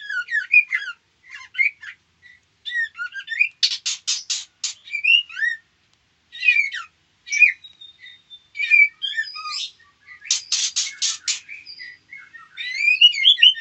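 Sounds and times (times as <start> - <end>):
female white-rumped shama whistled chirps and sweeping notes: 2.7 - 5.6, 6.4 - 13.5
female white-rumped shama rasping buzzy bursts: 3.6 - 4.8, 10.3 - 11.6.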